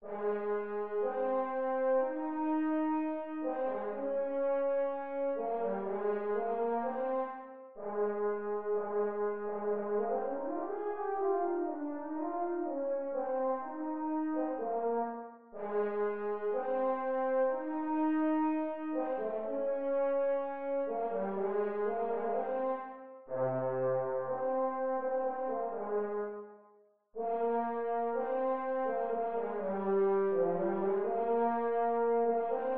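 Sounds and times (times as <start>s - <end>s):
horn: 0.0s - 32.7s.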